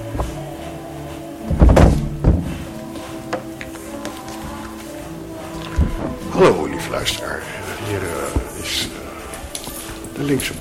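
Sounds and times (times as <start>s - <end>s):
door thudding shut with a heavy low impact: 1.5s - 2.6s
speech: 6.4s - 8.8s, 10.2s - 10.5s.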